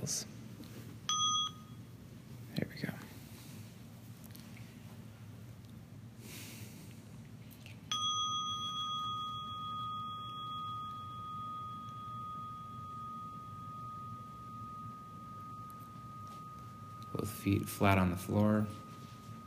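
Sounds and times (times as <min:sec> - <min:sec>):
speech: 0:00.1 - 0:00.3, 0:17.4 - 0:18.8
meditation bell ringing: 0:01.1 - 0:01.9, 0:07.9 - 0:19.4.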